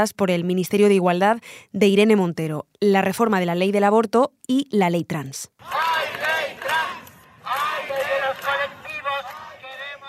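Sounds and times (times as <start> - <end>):
speech: 0.0 - 6.2
large outdoor crowd cheering and chanting: 5.6 - 10.0.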